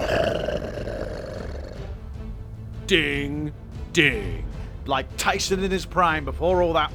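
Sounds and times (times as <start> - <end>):
lion roaring: 0.0 - 2.0
speech: 2.9 - 6.9.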